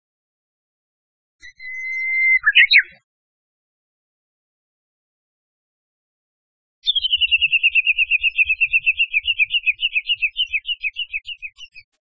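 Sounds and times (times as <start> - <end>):
Japanese bush warbler giving a long steady whistle: 1.4 - 3.0, 6.8 - 11.7
Japanese bush warbler repeated descending chirping notes: 1.4 - 3.0, 6.8 - 12.0.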